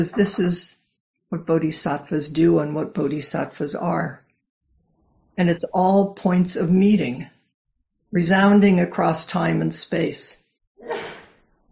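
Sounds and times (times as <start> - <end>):
speech: 0.0 - 4.2, 5.4 - 7.4, 8.1 - 11.1
sneeze: 10.8 - 11.5.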